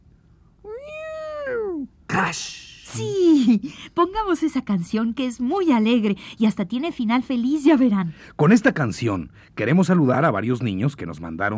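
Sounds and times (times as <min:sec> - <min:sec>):
single drawn-out cat meow: 0:00.7 - 0:01.9
speech: 0:02.2 - 0:11.5.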